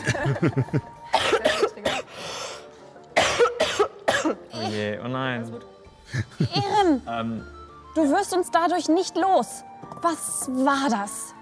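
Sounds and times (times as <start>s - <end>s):
laughter: 0.0s - 1.0s
speech: 0.2s - 1.0s, 4.7s - 11.3s
person coughing: 1.1s - 2.1s, 3.2s - 4.9s.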